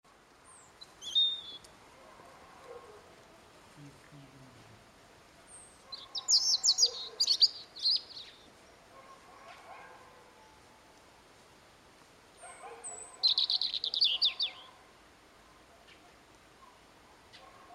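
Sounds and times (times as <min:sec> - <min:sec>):
European robin Erithacus rubecula singing warbled phrases: 0:00.5 - 0:01.7, 0:05.5 - 0:08.5, 0:12.8 - 0:14.8.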